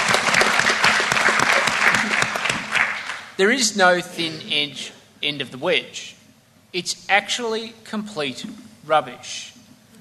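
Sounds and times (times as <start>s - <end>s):
audience applause: 0.0s - 3.4s
speech: 3.4s - 9.6s.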